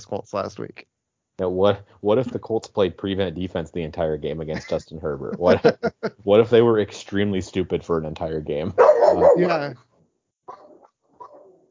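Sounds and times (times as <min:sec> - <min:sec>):
speech: 0:00.0 - 0:09.9
laughter: 0:04.2 - 0:06.8
dog barking: 0:08.8 - 0:09.5, 0:10.5 - 0:11.5.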